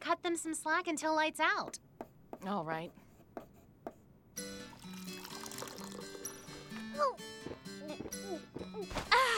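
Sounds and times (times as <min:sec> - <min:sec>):
speech: 0:00.1 - 0:03.0, 0:07.0 - 0:09.3
tea pouring into a glass: 0:04.7 - 0:07.0.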